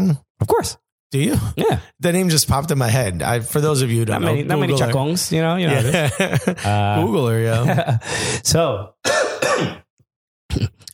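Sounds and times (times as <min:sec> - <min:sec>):
speech: 0:00.0 - 0:09.8
laughter: 0:05.6 - 0:08.1
person clearing throat: 0:09.0 - 0:09.9, 0:10.5 - 0:10.9.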